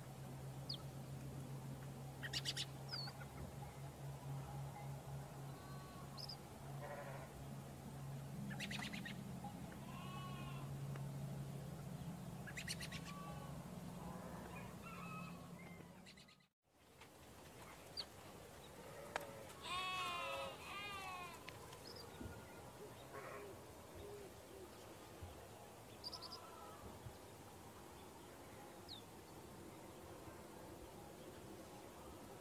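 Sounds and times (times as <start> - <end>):
farmyard background noise: 0.0 - 32.3
sheep bleating on a farm in the morning: 6.8 - 7.3, 9.8 - 10.7, 19.1 - 21.5.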